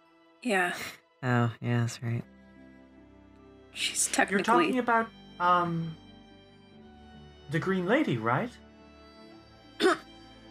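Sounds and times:
speech: 0:00.4 - 0:02.3, 0:03.8 - 0:06.0, 0:07.5 - 0:08.6
person coughing: 0:09.8 - 0:10.1.

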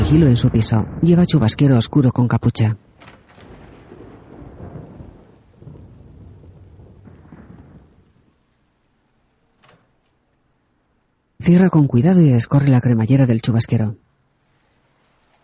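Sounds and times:
thunder from lightning rumbling during a storm: 0:00.0 - 0:12.0
speech: 0:00.1 - 0:02.9, 0:11.4 - 0:14.1.

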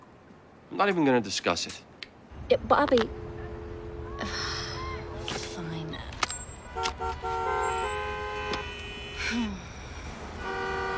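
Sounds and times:
steady low rumble of heavy street traffic: 0:00.0 - 0:10.9
speech: 0:00.7 - 0:01.9, 0:02.5 - 0:03.2, 0:04.2 - 0:04.6, 0:09.3 - 0:09.6
car horns honking in traffic: 0:03.0 - 0:09.5, 0:10.1 - 0:10.9.

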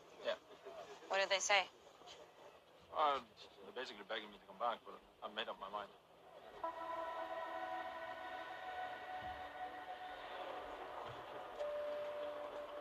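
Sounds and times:
speech: 0:01.2 - 0:02.2, 0:02.9 - 0:06.0, 0:06.6 - 0:07.3
sustained high whining tones: 0:06.3 - 0:12.7
train rumbling at a railway station: 0:06.3 - 0:12.7.

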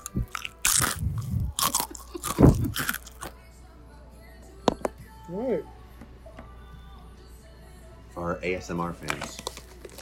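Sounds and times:
dipped pretzel snack being bitten and chewed: 0:00.0 - 0:03.4
speech: 0:08.4 - 0:09.5.

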